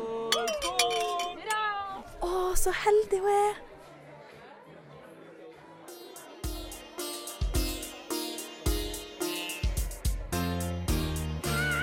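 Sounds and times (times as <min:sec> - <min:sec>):
murmur of voices at a wedding celebration: 0:00.0 - 0:10.8
glasses clinking in a toast to a new bride at a wedding: 0:00.3 - 0:01.6
speech: 0:02.6 - 0:03.7.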